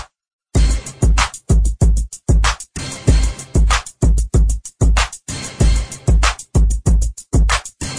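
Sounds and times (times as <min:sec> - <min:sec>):
hip hop beat ringtone on an iPhone 7 Plus: 0:00.5 - 0:07.9.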